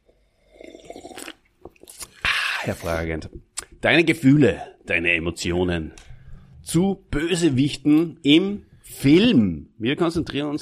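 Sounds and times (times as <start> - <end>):
sip of cola-orange soda slurp: 0.0 - 2.9
speech: 2.6 - 6.0, 6.7 - 10.6.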